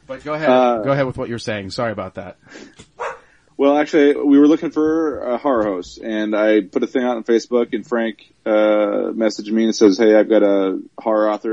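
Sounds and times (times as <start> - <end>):
speech: 0.1 - 2.9, 3.6 - 11.5
female household dog barking: 3.0 - 3.3.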